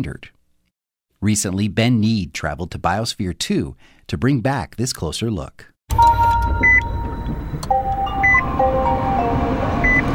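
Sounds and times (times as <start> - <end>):
speech: 0.0 - 0.4, 1.2 - 6.2
soft chime-like tones inside an electric car: 5.9 - 10.1
road rumble inside a moving electric car at highway speed: 6.8 - 10.1.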